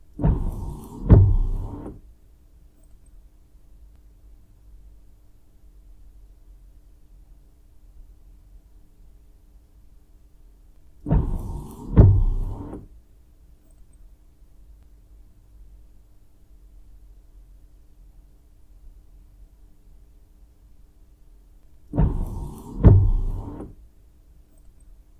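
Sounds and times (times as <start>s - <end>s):
car windshield wipers: 0.2s - 2.0s, 11.1s - 12.9s, 21.9s - 23.8s.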